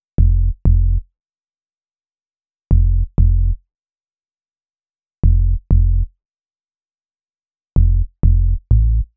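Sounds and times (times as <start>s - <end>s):
hip hop synth bass in F minor: 0.2s - 1.0s, 2.7s - 3.6s, 5.2s - 6.1s, 7.8s - 9.1s.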